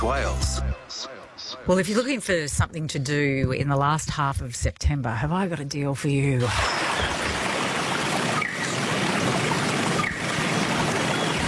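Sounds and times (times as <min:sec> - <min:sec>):
speech: 0:00.0 - 0:07.2
flowing brook rushing and trickling: 0:06.4 - 0:11.4.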